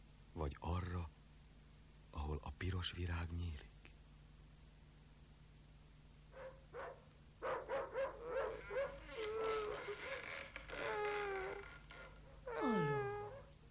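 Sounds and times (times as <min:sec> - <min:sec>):
faint steady hum: 0:00.0 - 0:13.6
speech: 0:00.4 - 0:01.2, 0:02.2 - 0:03.7
dogs barking at night: 0:06.4 - 0:09.1
dogs howling and whining at night: 0:06.4 - 0:11.7, 0:12.5 - 0:13.5.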